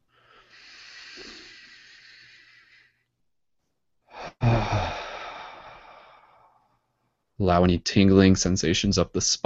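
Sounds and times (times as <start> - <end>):
deep breathing during a guided meditation: 0.0 - 3.2, 4.0 - 7.0
speech: 7.4 - 9.4.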